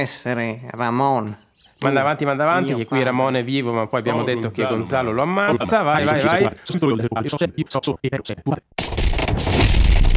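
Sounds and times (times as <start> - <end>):
speech: 0.0 - 9.5
explosions and battle noise from a fight scene: 8.8 - 10.1.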